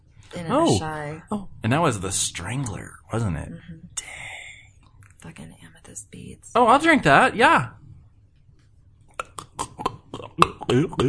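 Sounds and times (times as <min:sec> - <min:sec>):
speech: 0:00.3 - 0:04.3, 0:05.2 - 0:07.8, 0:10.2 - 0:11.0
person burping: 0:09.1 - 0:11.0.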